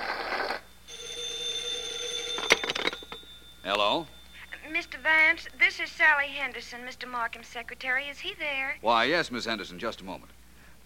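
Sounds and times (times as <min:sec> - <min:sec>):
telephone bell ringing: 0:00.2 - 0:06.8
speech: 0:03.7 - 0:10.3.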